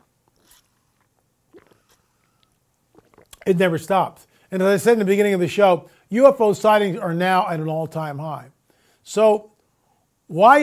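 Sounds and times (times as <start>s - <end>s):
wet slurps from a drink: 0.0s - 3.5s
speech: 3.4s - 9.5s, 10.3s - 10.6s.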